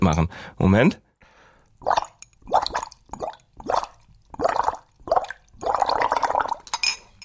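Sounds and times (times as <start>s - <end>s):
speech: 0.1s - 1.0s, 1.8s - 2.1s
air blown through a straw into water bubbling: 1.8s - 6.8s.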